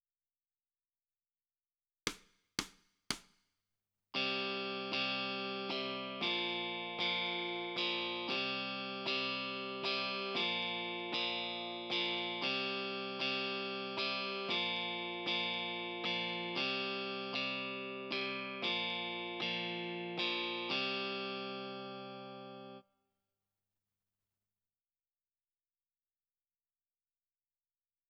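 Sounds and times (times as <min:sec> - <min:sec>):
guitar in left channel: 0:04.2 - 0:22.8.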